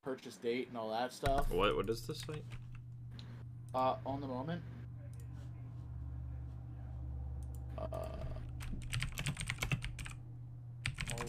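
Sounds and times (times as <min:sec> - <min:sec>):
speech: 0:00.1 - 0:02.6, 0:03.7 - 0:04.7
low steady hum: 0:00.5 - 0:11.2
rapid uneven typing on a computer keyboard: 0:08.6 - 0:10.2, 0:10.8 - 0:11.2.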